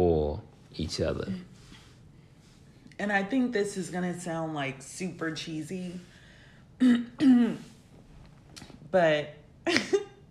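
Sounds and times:
speech: 0.8 - 1.6, 3.0 - 6.1, 6.8 - 7.7, 8.9 - 10.0
person coughing harshly: 6.8 - 7.7.

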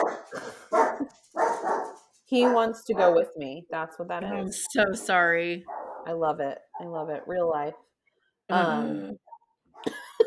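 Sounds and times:
dog barking: 0.0 - 3.2, 5.7 - 6.1
speech: 2.3 - 7.9, 8.5 - 10.0.

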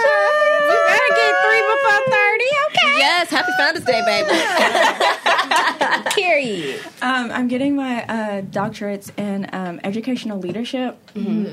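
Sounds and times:
dog howling: 0.0 - 2.3
laughter: 3.4 - 6.8
speech: 6.5 - 11.5.

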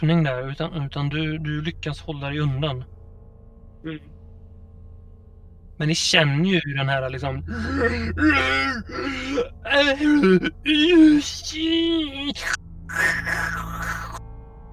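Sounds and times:
speech: 0.0 - 3.0, 3.8 - 4.2, 5.8 - 13.6
rough breathy moan: 7.2 - 14.2
creature wailing in pitch-bending cries: 7.4 - 14.2.

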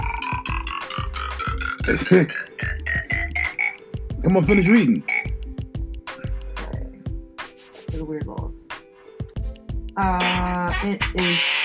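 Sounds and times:
croaky burp from a burp sound-effect phone app: 0.0 - 3.8, 5.0 - 5.4
steady rhythmic pulsing of tonal sounds: 0.0 - 6.9, 9.4 - 11.6
speech: 1.8 - 2.7, 4.2 - 5.1, 10.0 - 11.5.

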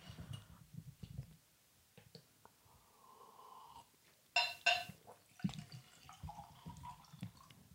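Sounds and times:
glass clatter and splash: 4.4 - 7.5
whiskey poured into a heavy glass: 5.1 - 7.6.

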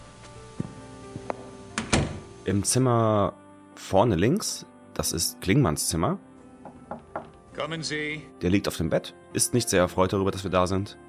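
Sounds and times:
door closing with a firm thud: 1.4 - 2.4
soft knocks and clicks of door handling: 1.8 - 2.3, 6.7 - 7.4
speech: 2.4 - 6.3, 7.6 - 11.0.

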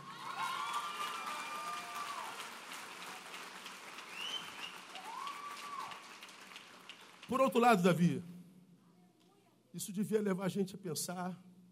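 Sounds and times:
large crowd applauding God: 0.0 - 8.0
high whistles or whoops: 0.2 - 2.4, 4.1 - 6.0
speech: 7.3 - 8.3, 9.8 - 11.5.

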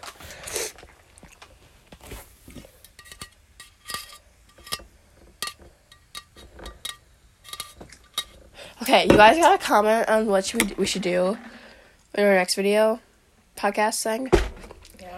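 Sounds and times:
utensil clinking against a pan while flipping food: 2.9 - 8.4
speech: 8.9 - 11.5, 12.2 - 13.0, 13.6 - 14.4.

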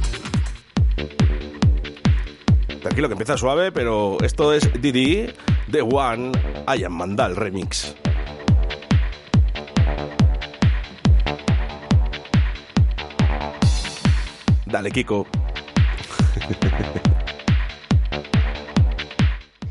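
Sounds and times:
energetic dance music remix played on vinyl: 0.0 - 19.7
man calling out over music: 2.8 - 8.1, 14.6 - 15.5
speech: 2.8 - 8.1, 14.7 - 15.4, 16.4 - 17.2
laughter: 16.0 - 17.2.

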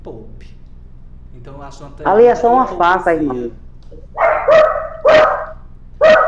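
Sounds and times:
speech: 1.4 - 4.0
small dog barking in high-pitched yaps: 4.0 - 6.2.

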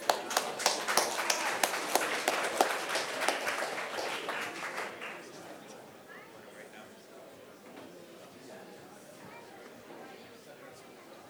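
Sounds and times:
crowd applauding: 0.0 - 5.6.

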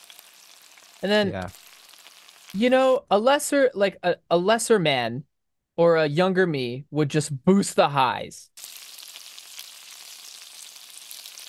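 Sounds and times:
food frying in a pan with crackles and pops: 0.0 - 3.0, 8.6 - 11.4
speech: 1.0 - 1.6, 2.5 - 8.5.

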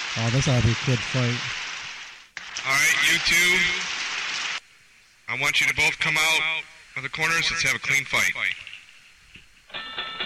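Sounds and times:
speech: 0.2 - 1.6, 2.7 - 4.0, 5.3 - 8.7
boxing match bell ringing: 9.7 - 10.2.

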